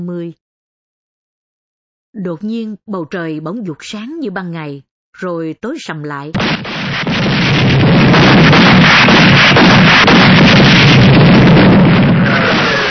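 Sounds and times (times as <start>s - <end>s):
speech: 0.0s - 0.4s, 2.1s - 6.7s
close explosions: 6.4s - 12.8s
heavy gunfire: 6.4s - 12.8s.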